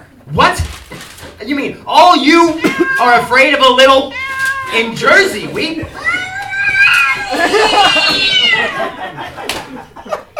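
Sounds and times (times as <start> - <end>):
speech: 0.3 - 0.8, 1.4 - 6.1, 7.4 - 9.6
several feral cats yowling and meowing: 2.6 - 3.2, 4.1 - 4.8, 5.8 - 9.1
faint laughter: 7.1 - 10.3.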